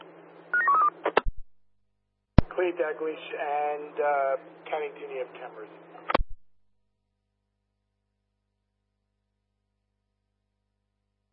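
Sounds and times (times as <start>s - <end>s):
faint steady hum: 0.0s - 1.4s, 2.4s - 6.5s
electronic telephone keypad dialing beeps: 0.6s - 0.9s
speech: 2.6s - 6.1s.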